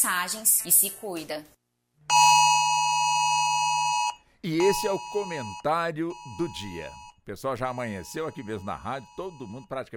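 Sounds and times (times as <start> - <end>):
speech: 0.0 - 1.6, 4.4 - 9.9
civil defense emergency alert tone on a mobile phone: 2.1 - 9.7.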